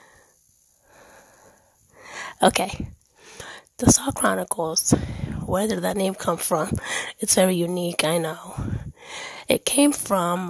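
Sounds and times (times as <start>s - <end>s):
faint wheezy breathing of someone catching their breath: 0.0s - 3.8s, 6.7s - 7.2s, 8.5s - 9.5s
speech: 2.4s - 3.0s, 3.8s - 10.4s.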